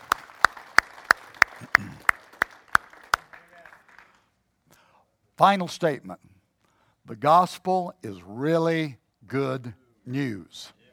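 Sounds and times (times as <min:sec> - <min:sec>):
group clapping in unison: 0:00.0 - 0:04.3
speech: 0:05.4 - 0:06.3, 0:07.1 - 0:10.8.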